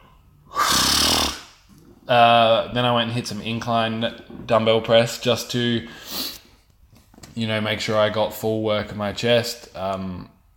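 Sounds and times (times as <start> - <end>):
person yawning: 0.5 - 1.5
speech: 2.1 - 6.3, 7.4 - 10.5.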